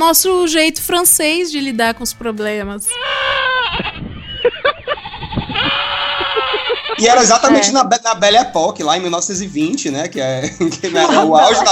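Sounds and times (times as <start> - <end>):
speech: 0.0 - 3.9, 7.0 - 11.7
goat bleating: 2.9 - 4.2, 5.0 - 7.7
laughter: 3.7 - 7.9, 10.2 - 11.7.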